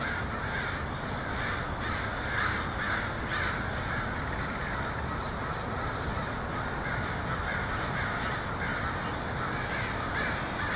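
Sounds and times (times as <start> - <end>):
crows calling en masse in Portland: 0.0 - 10.7.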